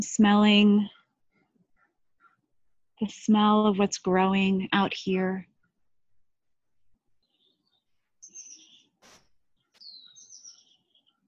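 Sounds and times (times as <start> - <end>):
speech: 0.0 - 1.0, 3.0 - 5.5
birds chirping outdoors: 7.2 - 11.2.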